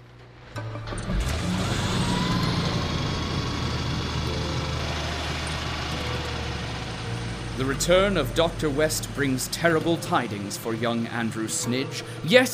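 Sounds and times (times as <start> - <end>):
car engine droning while driving: 0.0 - 12.5
speech: 7.6 - 12.5.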